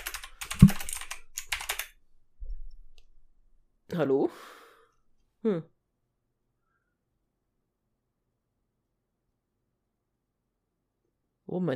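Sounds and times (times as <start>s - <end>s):
typing a chat message on a computer keyboard: 0.0s - 2.0s
speech: 3.9s - 4.6s, 5.4s - 5.7s, 11.5s - 11.7s.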